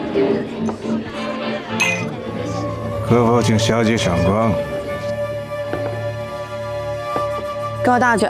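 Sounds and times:
music: 0:00.0 - 0:08.2
glasses clinking in a toast: 0:01.8 - 0:02.1
speech: 0:03.1 - 0:04.8, 0:07.9 - 0:08.2.

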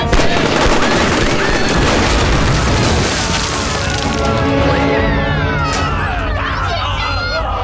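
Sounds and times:
gunfire barrage from armed men: 0:00.1 - 0:04.2
faint voices: 0:05.0 - 0:07.6.

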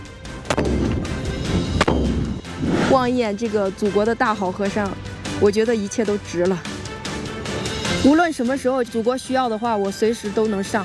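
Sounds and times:
live-fire gunshots during shooting practice at a border post: 0:00.5 - 0:02.9
constant low rumble: 0:00.8 - 0:03.3
speech: 0:02.9 - 0:06.8, 0:08.0 - 0:10.8.

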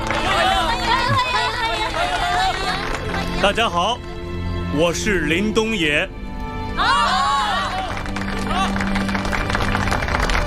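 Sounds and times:
small crowd of young people cheering and whooping: 0:00.0 - 0:03.3, 0:06.8 - 0:10.4
young people clapping: 0:00.0 - 0:04.2, 0:06.8 - 0:10.4
speech: 0:03.4 - 0:04.1, 0:04.7 - 0:06.2, 0:06.8 - 0:07.2.

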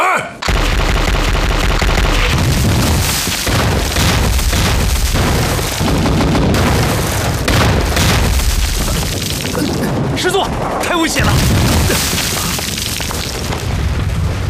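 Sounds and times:
artillery bombardment shells exploding: 0:00.4 - 0:14.4.

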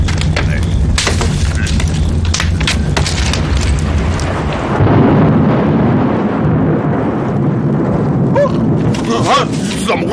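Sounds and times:
loud deep heavy thunder rumbling with crackling bursts: 0:00.0 - 0:10.1.

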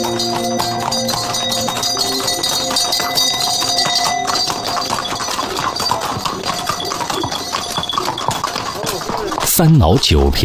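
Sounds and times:
horse hooves clip-clopping in a caravan on the Tea Horse Road at Songpan: 0:00.0 - 0:09.5
jingling bells on a horse caravan: 0:00.0 - 0:09.5
speech: 0:09.6 - 0:10.4.

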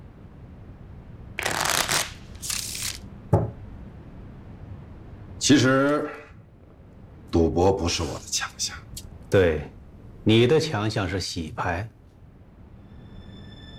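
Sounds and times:
playing cards shuffled in riffling bursts: 0:01.4 - 0:03.0
voices speaking: 0:05.4 - 0:06.4, 0:07.3 - 0:11.9.

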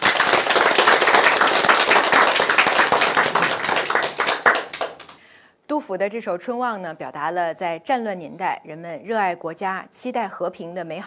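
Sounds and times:
group applauding: 0:00.0 - 0:05.2
speech: 0:05.8 - 0:11.0.

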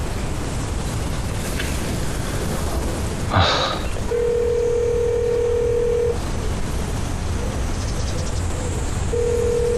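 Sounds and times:
steady windy hiss: 0:00.0 - 0:09.7
telephone ringback tone of an unanswered call: 0:04.1 - 0:06.2, 0:09.1 - 0:09.7.

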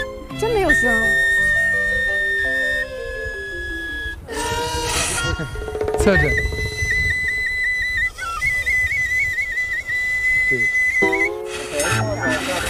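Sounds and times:
lower voiced tones: 0:00.0 - 0:12.6
person whistling a high note: 0:00.0 - 0:12.6
speech: 0:00.4 - 0:01.3, 0:05.4 - 0:06.5.

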